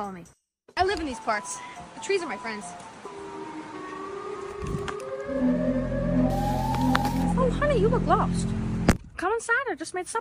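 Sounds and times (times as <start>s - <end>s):
speech: 0.0s - 2.9s, 4.6s - 5.6s, 7.5s - 10.1s
siren wailing: 2.6s - 8.8s
low rumbling background: 3.6s - 9.0s.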